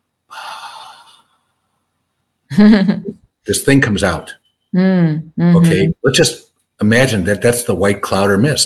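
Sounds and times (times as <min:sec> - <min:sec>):
person imitating a dying person's last breath with a breathy exhale: 0:00.3 - 0:01.2
speech: 0:02.6 - 0:08.6.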